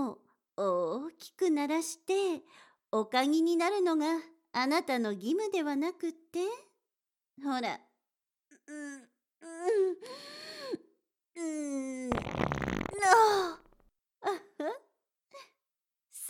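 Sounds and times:
speech: 0.6 - 6.7, 7.4 - 7.9, 8.7 - 10.6, 11.4 - 13.6, 14.2 - 14.8
farts: 12.1 - 13.8.

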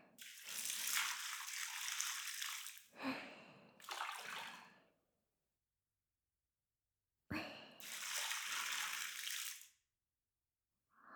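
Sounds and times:
hot water pouring in a bath to rinse someone's back: 0.2 - 2.9, 3.8 - 4.6, 7.8 - 9.7.

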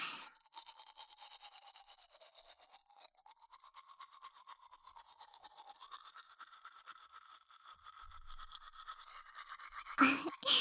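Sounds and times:
gentle brushing of teeth with a toothbrush: 0.0 - 10.5.

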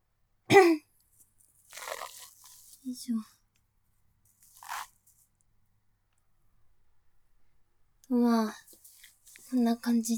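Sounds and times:
aluminum foil crinkling as it's spread out: 1.4 - 3.0, 8.6 - 9.6
speech: 2.9 - 3.4, 8.1 - 8.6, 9.5 - 10.1.

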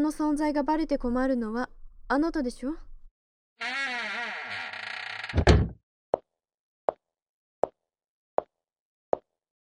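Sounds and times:
speech: 0.0 - 2.9, 3.6 - 3.8
door hinges creaking: 3.6 - 5.8
door shutting with a heavy thud: 5.2 - 5.8.

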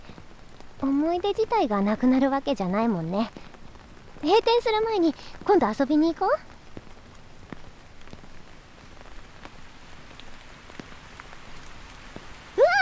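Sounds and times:
heavy rain on hard surfaces: 0.0 - 12.8
speech: 0.8 - 3.4, 4.2 - 6.5.

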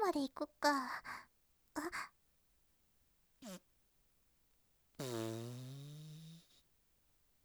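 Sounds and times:
speech: 0.1 - 1.2
fart noises inside a car: 5.0 - 6.4.

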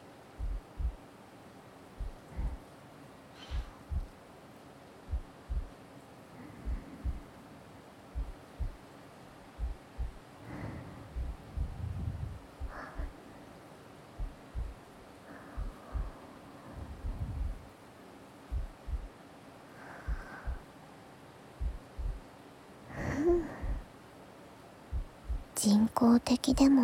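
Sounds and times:
hum: 0.0 - 24.0, 24.8 - 26.8
steady heartbeat thumping in soft low double beats: 0.4 - 1.0, 2.0 - 2.6, 3.5 - 4.1, 5.1 - 5.8, 6.6 - 7.3, 8.1 - 8.8, 9.6 - 10.2, 11.0 - 13.2, 14.2 - 16.2, 16.8 - 17.7, 18.5 - 19.1, 20.1 - 20.6, 21.6 - 22.2, 23.3 - 23.8, 24.9 - 25.6, 26.5 - 26.8
speech: 25.6 - 26.8.

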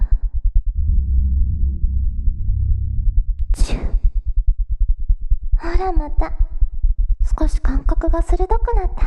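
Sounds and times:
heartbeat thumps: 0.2 - 6.7
sustained low drone: 0.7 - 4.3
airy whoosh: 0.8 - 4.0
speech: 5.8 - 6.5, 7.4 - 9.0.

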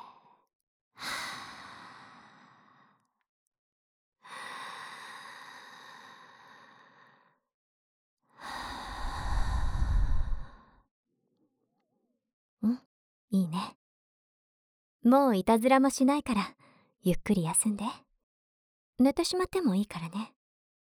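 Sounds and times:
slow deep breathing: 1.0 - 3.1, 4.2 - 7.4, 8.4 - 10.8
speech: 15.1 - 18.0, 19.0 - 20.4.

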